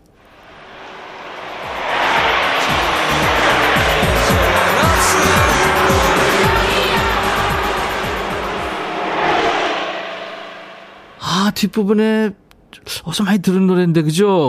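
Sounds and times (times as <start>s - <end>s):
cars speeding past on a road: 0.2s - 11.5s
speech: 11.6s - 14.4s.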